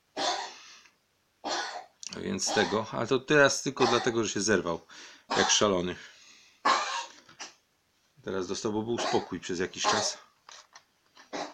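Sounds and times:
harsh raspy coughs with a trailing wheeze: 0.2s - 0.6s, 1.4s - 2.9s, 3.8s - 4.2s, 5.3s - 5.7s, 6.6s - 7.6s, 9.0s - 10.2s, 11.3s - 11.5s
speech: 2.2s - 6.2s, 8.2s - 10.3s.

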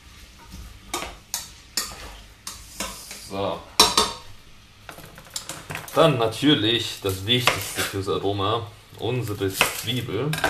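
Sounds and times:
food sizzling in a pan: 0.0s - 10.2s
spatula scraping and stirring food in a pan: 1.3s - 3.3s, 7.1s - 8.0s
speech: 3.3s - 3.7s, 6.0s - 10.4s.

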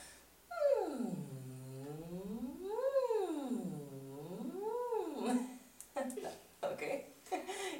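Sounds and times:
breaths: 0.0s - 0.3s, 7.5s - 7.7s
single voice performing a siren vocal warm-up exercise: 0.5s - 5.4s.

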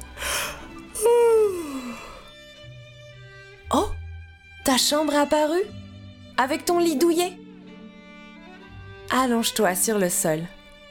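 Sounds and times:
person yawning: 0.2s - 2.3s
speech: 4.7s - 5.8s, 6.4s - 7.4s, 9.2s - 10.6s.

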